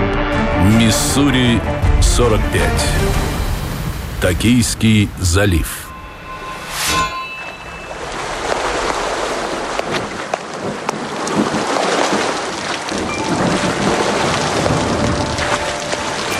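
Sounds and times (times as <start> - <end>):
speech: 0.7 - 3.4, 4.2 - 5.8
steady heavy rain hissing: 2.0 - 5.8, 8.0 - 16.3
sharp metallic clang: 5.9 - 8.9.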